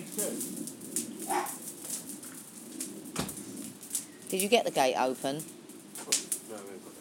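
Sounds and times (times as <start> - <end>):
dogs barking with short sharp yelps: 1.2 - 1.9
speech: 4.3 - 5.6.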